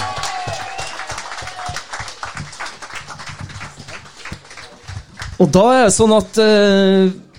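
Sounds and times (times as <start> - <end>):
whistle or cheer: 0.0 - 1.8
crowd applauding in a room: 0.0 - 7.3
speech: 5.4 - 7.2.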